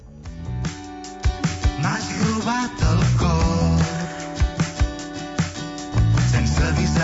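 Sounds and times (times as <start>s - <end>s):
punchy drums marking a steady beat: 0.0s - 7.0s
sustained guitar chords: 0.0s - 7.0s
lead vocalist singing pop-rock song: 1.6s - 4.6s, 6.0s - 7.0s.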